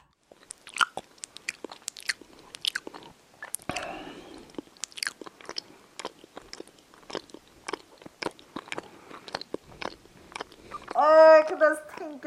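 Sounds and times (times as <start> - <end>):
crunchy bites: 0.0 - 11.0
sharp lip smacks: 0.0 - 12.1
loud wet open-mouth chewing of food: 0.0 - 12.2.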